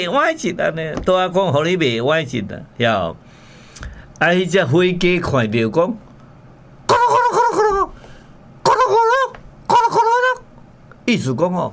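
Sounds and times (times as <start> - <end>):
speech: 0.0 - 3.4, 4.2 - 6.1, 11.1 - 11.7
person imitating a male turkey's gobble: 6.9 - 8.0, 8.6 - 10.4.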